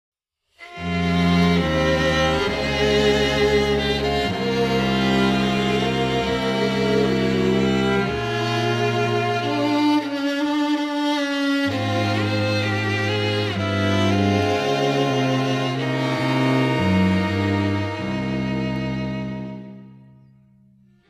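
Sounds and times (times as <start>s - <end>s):
saxophone quartet playing a pavane: 0.6s - 20.0s.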